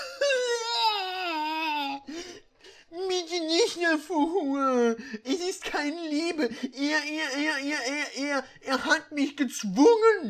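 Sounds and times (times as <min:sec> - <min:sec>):
person performing crying with wailing sobs: 0:00.0 - 0:03.1, 0:04.4 - 0:05.4, 0:06.0 - 0:08.6
speech: 0:03.8 - 0:10.2.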